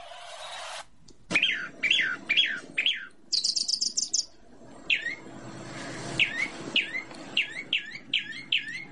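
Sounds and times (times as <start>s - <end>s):
Chalk-browed mockingbird singing: 1.4s - 4.3s, 6.2s - 8.8s.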